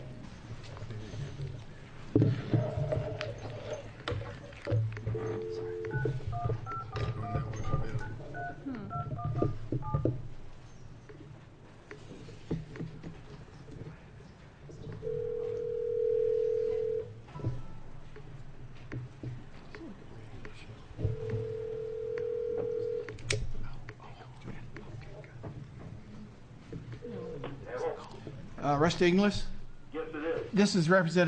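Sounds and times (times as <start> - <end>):
murmur of room noise at a Judiciary Committee hearing: 0.0 - 31.2
ringing tones over a speakerphone: 5.1 - 10.0, 15.0 - 17.8, 21.0 - 23.2
touch-tone beeps from a phone keypad: 5.3 - 10.0
speech: 28.8 - 29.5, 30.6 - 31.2.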